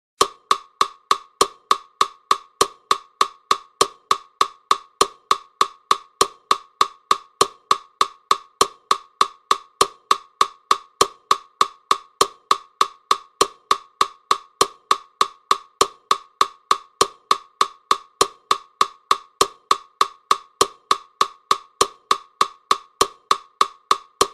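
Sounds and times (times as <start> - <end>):
metronome ticking: 0.2 - 24.3.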